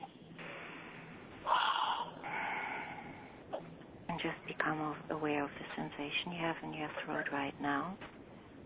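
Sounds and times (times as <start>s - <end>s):
slow deep breathing during a guided breathing exercise: 0.4s - 3.6s
speech: 4.2s - 8.2s.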